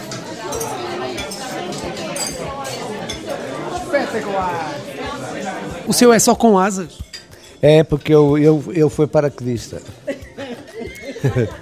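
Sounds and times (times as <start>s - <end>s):
glasses clinking in a toast: 0.4s - 3.7s, 6.7s - 8.2s
table noise: 0.5s - 3.3s
speech: 4.0s - 5.2s, 5.9s - 10.1s, 11.2s - 11.6s
laughter: 10.0s - 11.6s.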